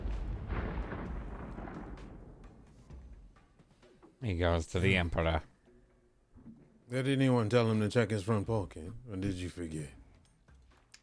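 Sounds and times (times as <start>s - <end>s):
massive distant explosion: 0.0s - 3.6s
speech: 4.2s - 5.5s, 6.9s - 10.0s.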